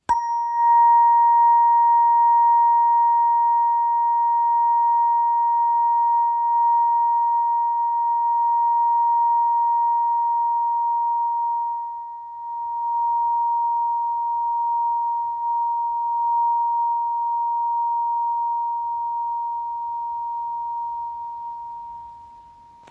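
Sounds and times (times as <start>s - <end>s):
936 Hz aluminium therapeutic solfeggio tuning fork tone: 0.0s - 22.8s.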